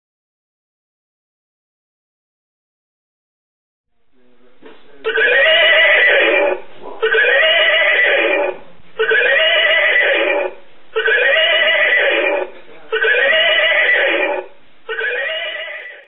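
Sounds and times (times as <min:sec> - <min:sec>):
horse alarm clock: 0:05.1 - 0:12.4, 0:13.0 - 0:16.0.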